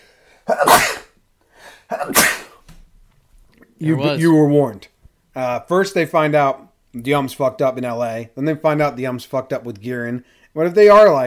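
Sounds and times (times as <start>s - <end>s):
breathy inhale: 0.0s - 0.5s, 1.4s - 1.9s, 10.2s - 10.6s
person sneezing: 0.4s - 1.2s, 1.9s - 2.6s
speech: 0.5s - 0.8s, 2.0s - 2.4s, 3.8s - 11.2s.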